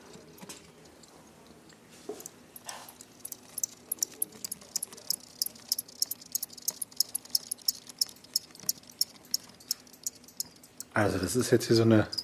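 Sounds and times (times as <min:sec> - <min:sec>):
crickets about 2 cm long chirping inside a 10 by 10 box: 0:02.6 - 0:12.2
speech: 0:11.0 - 0:12.2.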